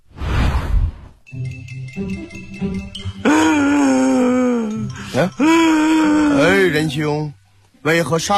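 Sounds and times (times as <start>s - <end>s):
speech: 1.9s - 2.9s, 6.7s - 8.3s
voice imitating loud wailing sobs in a comic routine: 3.2s - 6.8s.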